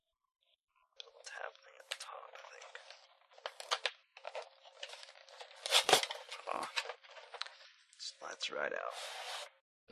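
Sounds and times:
paper packaging being torn open: 3.4s - 6.9s
speech: 8.5s - 9.2s.

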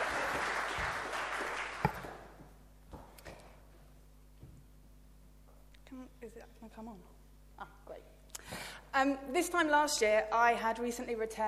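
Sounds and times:
audience applauding a speaker: 0.0s - 2.4s
speech: 6.8s - 8.1s, 9.0s - 11.4s.

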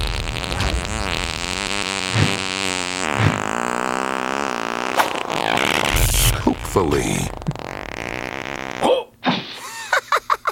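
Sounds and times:
long loud buzzing fart: 0.0s - 9.6s
short whooshing burst: 3.1s - 3.5s, 5.0s - 7.3s
speech: 6.8s - 7.4s.

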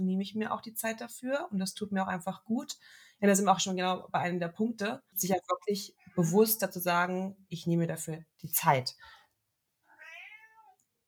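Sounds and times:
speech: 0.2s - 9.2s
cat meowing: 9.9s - 10.8s.

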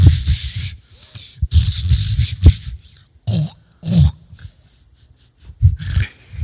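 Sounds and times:
hyena snuffling and snorting in the bushes: 0.0s - 6.4s.

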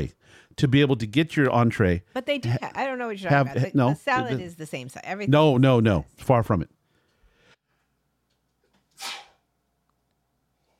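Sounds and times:
speech: 0.0s - 6.8s
person sneezing: 8.9s - 9.4s.

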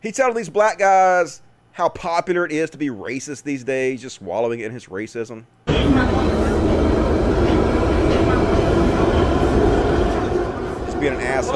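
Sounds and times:
speech: 0.0s - 6.2s, 11.0s - 11.5s
London Tube subway carriage in motion: 5.7s - 11.5s
indistinct voices murmuring: 5.7s - 11.5s.

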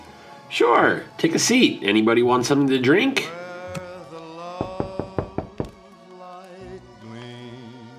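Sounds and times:
music playing: 0.0s - 6.1s
speech: 0.5s - 3.4s
knocking on a door: 4.6s - 5.8s.

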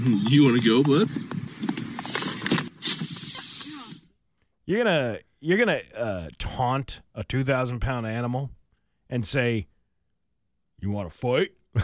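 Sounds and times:
speech: 0.0s - 1.4s, 4.7s - 9.7s, 10.8s - 11.8s
movement sounds: 0.0s - 4.1s
air hissing from a vehicle tire punctured by elk antlers at Yellowstone National Park: 2.8s - 4.0s.

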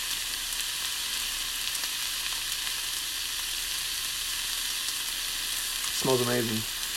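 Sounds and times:
flank steak sizzling while frying in a pan: 0.0s - 6.9s
speech: 6.0s - 6.8s.

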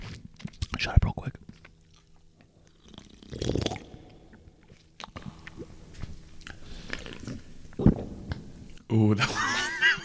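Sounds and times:
speech: 0.8s - 1.3s, 9.0s - 9.4s
swallowing gulp recorded with microphone against throat: 2.7s - 8.1s
laughter: 9.2s - 10.0s.

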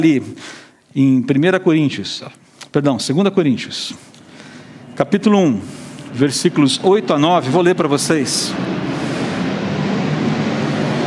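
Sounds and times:
speech: 0.0s - 4.1s, 5.0s - 8.9s
airplane roaring overhead: 4.2s - 11.0s.

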